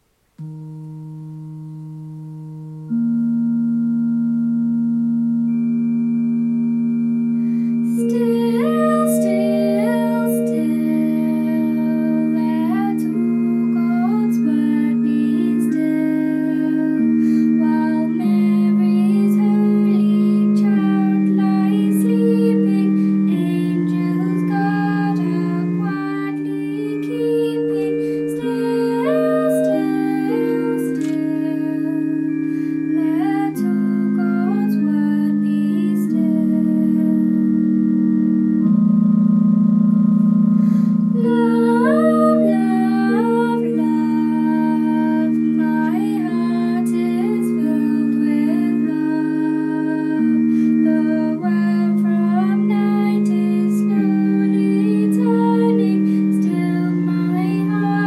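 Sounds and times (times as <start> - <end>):
soprano singing a Christmas song: 0.4 - 39.7, 40.6 - 58.0
Christmas choir singing: 8.0 - 37.5, 41.2 - 58.0.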